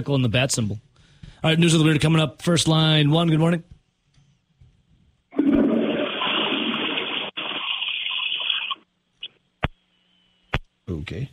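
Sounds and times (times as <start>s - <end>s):
speech: 0.0s - 3.8s, 10.9s - 11.3s
toilet flushing: 5.4s - 8.8s.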